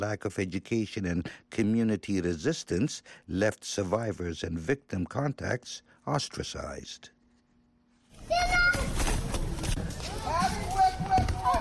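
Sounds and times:
speech: 0.0s - 7.2s
children shouting during an outdoor soccer game: 8.2s - 9.2s, 10.0s - 11.5s
busy open-air background in a community outside Monrovia Liberia: 8.2s - 11.5s
scuffling footsteps: 8.3s - 11.5s.

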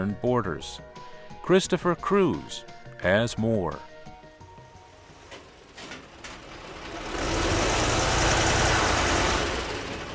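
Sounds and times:
speech: 0.0s - 3.9s
heavy engine roar of armored personnel carriers and tanks being loaded onto trucks in Afghanistan: 4.9s - 10.1s.

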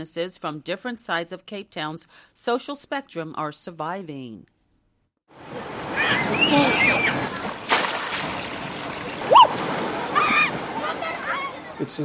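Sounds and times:
speech: 0.0s - 4.5s, 6.2s - 7.5s, 11.8s - 12.0s
water splashing and gushing as children slide down water slides into pools: 5.4s - 12.0s
children shouting and squealing excitedly: 5.9s - 7.4s, 9.3s - 11.8s.

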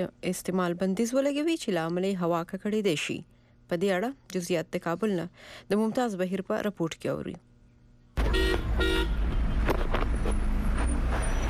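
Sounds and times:
speech: 0.0s - 7.5s
car horn toots in central Kabul: 8.2s - 9.4s
busy street traffic in crowded central Kabul: 8.2s - 11.4s.

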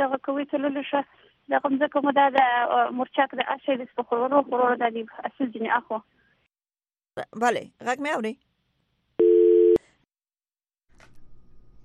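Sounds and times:
speech: 0.0s - 6.2s, 7.2s - 8.5s
telephone tone after a call connection drops: 9.2s - 9.8s.

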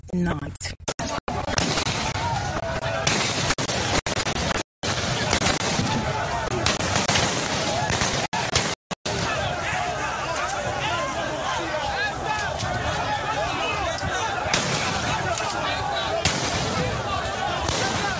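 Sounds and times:
people shouting: 1.0s - 4.0s, 5.0s - 18.1s
loud chaotic crowd roar: 1.0s - 18.1s
gunshots fired at protesters: 1.3s - 9.5s, 14.4s - 18.1s.

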